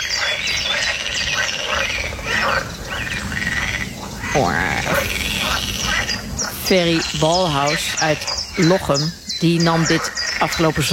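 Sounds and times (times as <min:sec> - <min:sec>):
chorus of pool frogs croaking in a pond: 0:00.0 - 0:10.9
speech: 0:04.4 - 0:04.9, 0:06.7 - 0:10.9.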